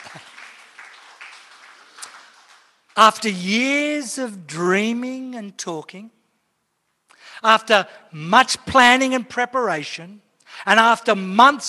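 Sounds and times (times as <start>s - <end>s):
audience applause at a building handover ceremony: 0.0s - 2.9s
speech: 3.0s - 6.2s, 7.4s - 11.6s.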